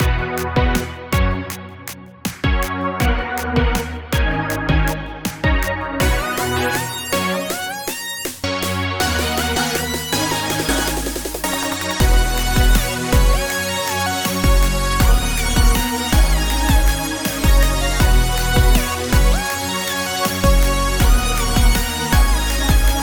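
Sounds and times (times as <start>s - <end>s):
future bass music: 0.0s - 23.0s.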